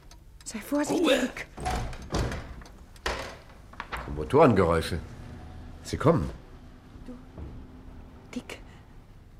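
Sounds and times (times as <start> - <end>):
speech: 0.5 - 1.5, 4.2 - 5.2, 5.8 - 6.4
solid wooden thunks of a window: 1.6 - 4.2, 7.3 - 8.1
wooden window being opened: 1.6 - 8.3.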